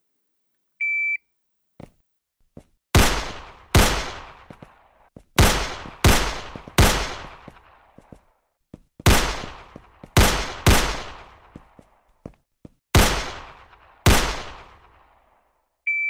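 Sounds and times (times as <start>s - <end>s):
short electronic beep: 0.8s - 1.2s, 15.9s - 16.0s
gunshots at a shooting range: 3.0s - 8.1s, 9.0s - 11.9s, 13.0s - 15.4s.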